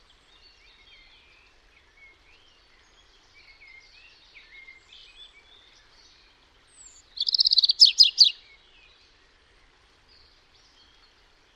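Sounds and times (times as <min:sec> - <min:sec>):
European robin song: 0:06.8 - 0:08.4.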